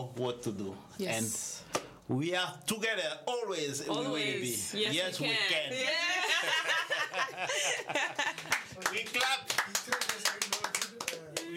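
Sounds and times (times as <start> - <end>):
speech: 0.0 - 10.5
laughter: 5.9 - 8.8
steady rhythmic hand clapping: 8.1 - 11.5.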